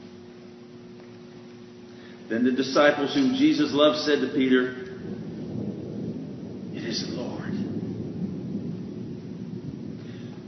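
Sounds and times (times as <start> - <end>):
thunder rumbling overhead: 1.6 - 10.4
speech: 2.3 - 4.9, 7.0 - 7.6.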